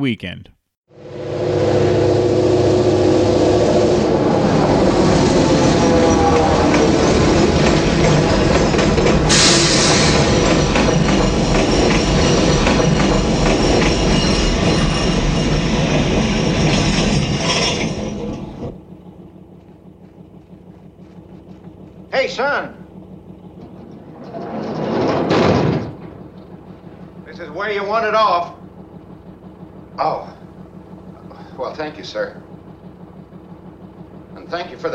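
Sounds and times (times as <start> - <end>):
speech: 0.0 - 0.6, 27.9 - 28.6, 30.0 - 30.3, 31.6 - 32.4, 34.5 - 34.9
freight train rumbling along the tracks: 1.0 - 34.9
metallic screech of freight train: 9.3 - 18.7.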